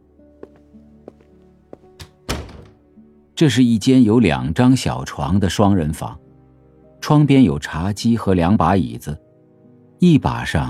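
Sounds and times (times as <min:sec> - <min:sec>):
door opening inward into a twin room: 0:02.0 - 0:02.8
speech: 0:03.4 - 0:06.2, 0:07.0 - 0:09.2, 0:10.0 - 0:10.6.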